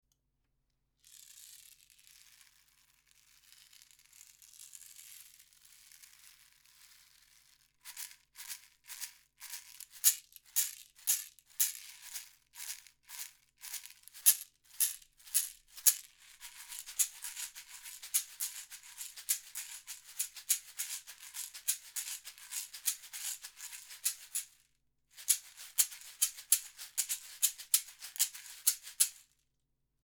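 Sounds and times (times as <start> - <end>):
large caxixi shaker: 7.9 - 29.4.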